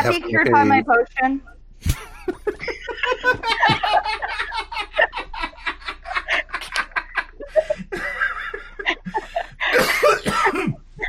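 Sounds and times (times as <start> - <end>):
speech: 0.0 - 4.0
hard breathy laughter: 1.8 - 10.2
fit of harsh coughs from laughing: 7.6 - 11.0.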